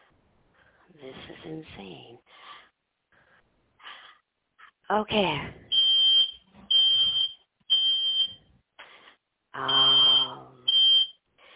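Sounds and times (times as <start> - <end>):
speech: 0.9 - 2.4, 4.9 - 5.6, 9.6 - 9.9
fire alarm beeping in a house: 5.7 - 8.4, 9.6 - 11.2
indistinct voice: 9.6 - 10.7.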